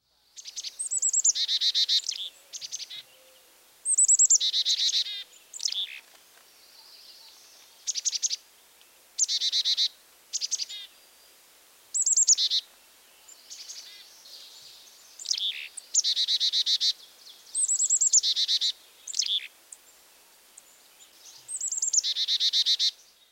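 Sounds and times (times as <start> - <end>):
Carolina chickadee chick-a-dee-dee calls: 0.4 - 8.5, 9.2 - 11.2, 11.9 - 23.1.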